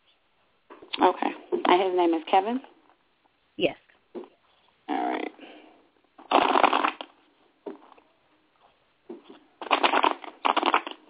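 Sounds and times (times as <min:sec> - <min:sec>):
speech: 0:01.0 - 0:02.8, 0:03.6 - 0:03.8
tarot cards being shuffled by hand: 0:06.2 - 0:07.1, 0:09.1 - 0:11.0.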